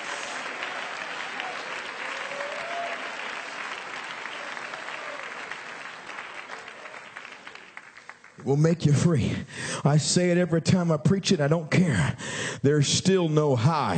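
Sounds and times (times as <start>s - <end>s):
audience clapping hands: 0.0s - 8.6s
speech: 8.4s - 13.9s.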